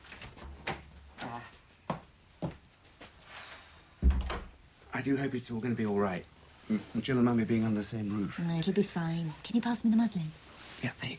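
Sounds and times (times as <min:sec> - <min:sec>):
door opening with a loud full thump: 0:04.0 - 0:04.6
speech: 0:05.0 - 0:11.1.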